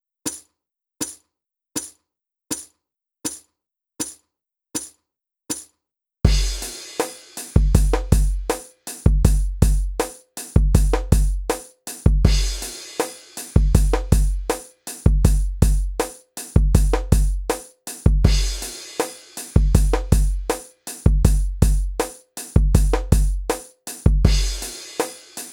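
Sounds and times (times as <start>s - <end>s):
handheld video game drum beat: 6.3s - 25.5s.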